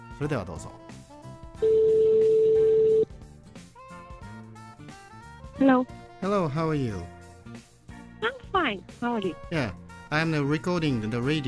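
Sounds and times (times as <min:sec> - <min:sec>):
speech: 0:00.2 - 0:00.9, 0:05.6 - 0:07.2, 0:08.2 - 0:11.4
phone line electronic ringback tone while placing a call: 0:01.6 - 0:03.1.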